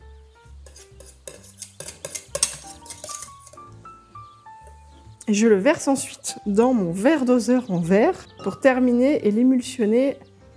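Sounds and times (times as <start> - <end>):
spoon scraping and clinking against a metal sieve mesh: 0.6 - 3.8
thick caramel pushed through a metal sieve: 0.6 - 3.8
speech: 5.3 - 10.3.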